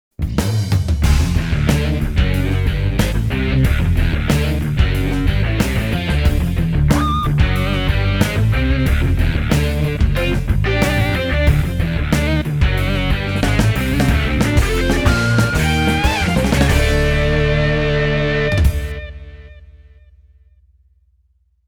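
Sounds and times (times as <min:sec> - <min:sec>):
distorted guitar: 0:01.0 - 0:19.9.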